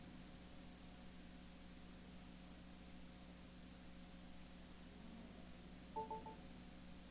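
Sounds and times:
steady hiss: 0.0s - 7.0s
telephone keypad tones: 6.0s - 6.4s.

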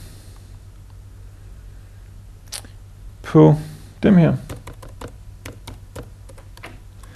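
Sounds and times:
speech: 3.3s - 4.6s
typing on a computer keyboard: 4.5s - 6.7s.

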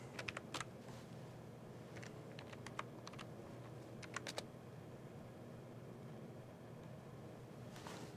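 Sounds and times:
faint steady hum: 0.0s - 8.1s
computer keyboard clicking as a file path is typed: 0.1s - 0.7s, 1.9s - 3.3s, 4.0s - 4.4s.

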